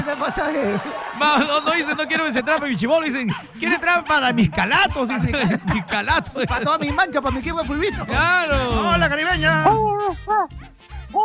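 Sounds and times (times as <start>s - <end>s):
laughter: 0.0s - 10.5s
speech: 0.1s - 11.2s
human voice imitating a dog barking with short yelps: 8.0s - 11.2s.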